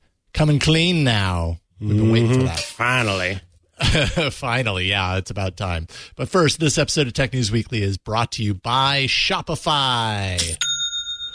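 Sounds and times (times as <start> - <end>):
speech: 0.4 - 10.7
online store sale notification chime: 10.6 - 11.3.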